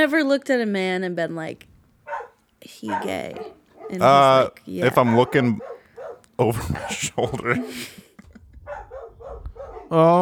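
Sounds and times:
speech: 0:00.0 - 0:05.7, 0:06.4 - 0:08.0, 0:09.9 - 0:10.2
dogs barking: 0:01.6 - 0:10.2
laughter: 0:04.0 - 0:09.0.

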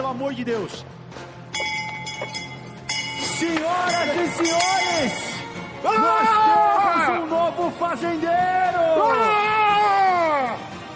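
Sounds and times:
speech: 0:00.1 - 0:01.3, 0:03.4 - 0:09.6
bell ringing: 0:01.6 - 0:05.8.

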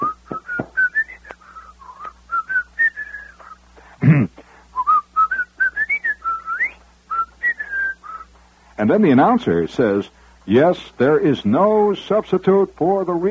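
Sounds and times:
person whistling a bright song melody in a radio commercial: 0:00.0 - 0:03.6, 0:04.8 - 0:08.3
speech: 0:08.8 - 0:13.2.

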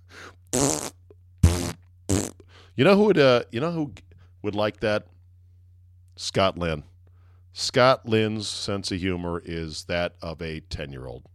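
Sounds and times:
faint breathy puff: 0:00.0 - 0:00.9, 0:01.5 - 0:02.8
steady low hum: 0:00.0 - 0:11.3
buzzy fart noises: 0:00.5 - 0:02.5
speech: 0:02.8 - 0:05.1, 0:06.2 - 0:06.9, 0:07.6 - 0:11.3.

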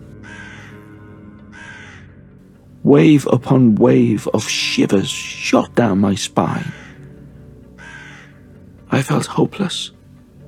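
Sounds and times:
crow cawing in trees above a graveside: 0:00.1 - 0:02.2, 0:06.5 - 0:08.6
speech: 0:02.8 - 0:06.9, 0:09.0 - 0:10.0.

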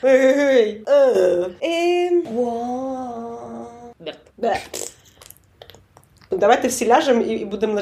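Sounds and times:
speech: 0:00.0 - 0:02.6, 0:06.4 - 0:07.8
held vocal tone: 0:00.0 - 0:06.2.

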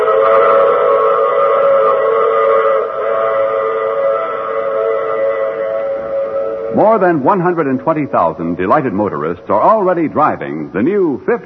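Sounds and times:
train whistle blowing: 0:00.0 - 0:09.7
speech: 0:06.8 - 0:11.4.

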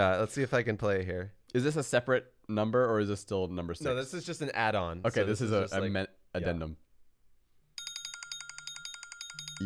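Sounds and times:
speech: 0:00.0 - 0:06.8
phone alarm ringtone with bright bell trill: 0:07.8 - 0:09.6.

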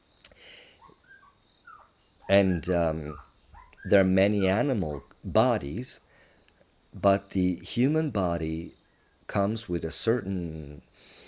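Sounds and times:
tropical birds calling: 0:00.0 - 0:05.3, 0:08.6 - 0:09.3
speech: 0:02.3 - 0:06.0, 0:06.9 - 0:11.1.

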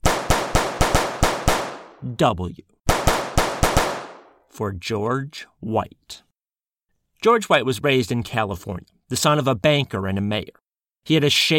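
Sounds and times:
small-calibre pistol gunshots fired into wall molding in a hotel room: 0:00.0 - 0:02.0, 0:02.9 - 0:04.4
speech: 0:02.0 - 0:02.7, 0:04.6 - 0:06.2, 0:07.2 - 0:11.5.

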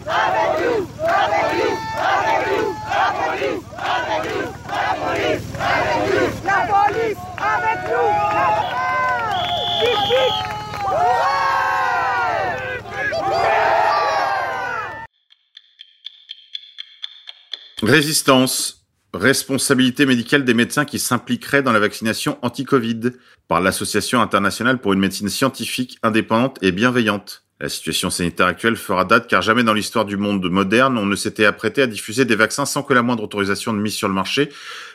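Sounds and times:
yellow vest protesters crowd shouting and chanting in Carcassonne France: 0:00.0 - 0:15.1
speech: 0:17.9 - 0:34.9.

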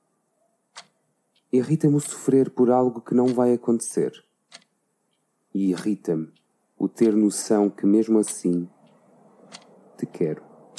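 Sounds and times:
clock ticking: 0:00.7 - 0:02.3, 0:03.2 - 0:03.5, 0:04.5 - 0:07.4, 0:08.2 - 0:09.7
speech: 0:01.5 - 0:04.3, 0:05.6 - 0:08.8, 0:10.0 - 0:10.5.

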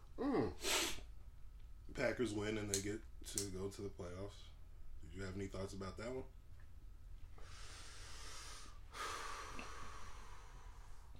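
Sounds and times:
sharp nasal inhale through the nose: 0:00.6 - 0:01.0, 0:07.4 - 0:11.1
speech: 0:02.0 - 0:06.4.

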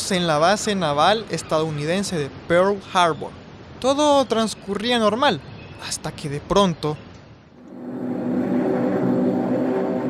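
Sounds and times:
speech: 0:00.1 - 0:07.0
aircraft engines flying overhead: 0:07.6 - 0:10.0.

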